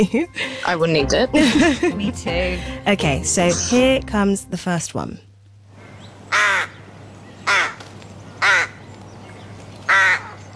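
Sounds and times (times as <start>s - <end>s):
laughter: 0.0s - 3.0s
speech: 0.0s - 5.3s
rook cawing: 5.7s - 8.9s, 9.8s - 10.5s.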